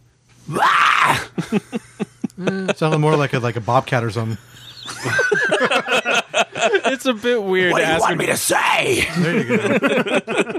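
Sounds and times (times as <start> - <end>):
speech: 0.5 - 0.7, 1.5 - 1.9, 2.7 - 6.0, 6.6 - 10.5
harsh raspy metal-style vocal scream: 0.5 - 1.4, 7.7 - 9.2
laughter: 1.3 - 3.5, 4.3 - 10.5.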